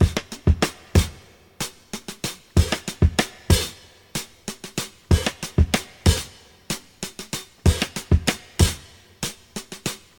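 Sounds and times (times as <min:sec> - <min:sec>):
kick drum tuned to E: 0:00.0 - 0:01.2, 0:02.6 - 0:03.7, 0:05.1 - 0:06.3, 0:07.7 - 0:08.8
94 bpm drum loop in E: 0:00.0 - 0:10.1.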